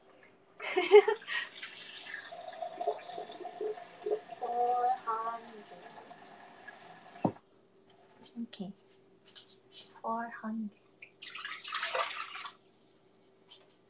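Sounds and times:
speech: 0.8 - 1.2
cold tap water pouring into a pot for cooking noodles: 1.0 - 7.4, 11.1 - 12.6.

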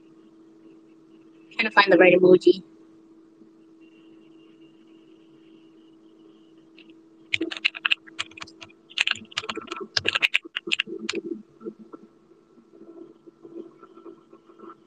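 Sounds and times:
speech: 1.5 - 2.7
computer keyboard typing: 7.3 - 11.4.

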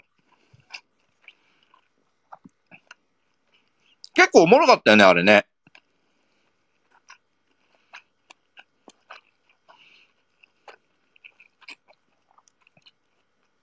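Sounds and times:
faint chewing of rice: 0.0 - 4.1, 5.6 - 13.6
speech: 4.3 - 5.5.

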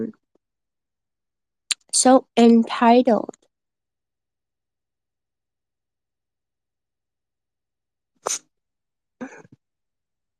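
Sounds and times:
speech: 1.9 - 3.4, 8.2 - 8.4
person coughing: 9.2 - 9.6.

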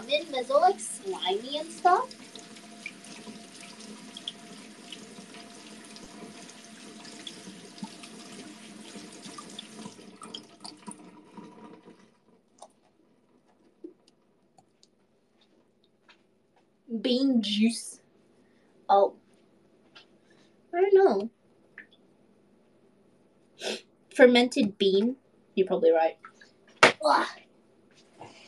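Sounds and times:
tap water running into a sink as canned beans are rinsed: 0.0 - 12.2
water drips: 0.0 - 12.9, 21.7 - 22.0, 26.1 - 26.6
speech: 0.3 - 2.2, 17.0 - 18.0, 18.9 - 19.2, 20.8 - 21.4, 23.6 - 26.3, 27.0 - 27.4.

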